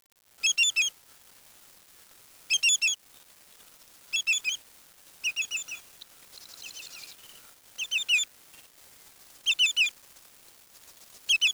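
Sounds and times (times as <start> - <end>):
bird chirping: 2.5 - 3.0, 4.1 - 4.6, 5.2 - 8.2, 9.5 - 9.9, 11.3 - 11.5.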